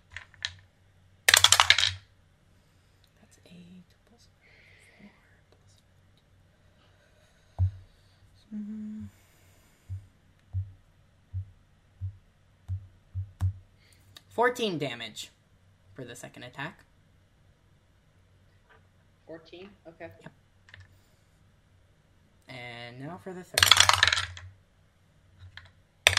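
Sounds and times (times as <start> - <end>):
dice rattling and clattering across a surface during a tabletop role-playing game: 0.0 - 0.7, 1.3 - 2.1, 23.6 - 24.5, 25.4 - 26.1
soft low thumps: 7.5 - 9.2, 9.8 - 13.8
speech: 8.5 - 9.2, 14.4 - 15.4, 16.0 - 16.9, 19.3 - 20.4, 22.5 - 24.3.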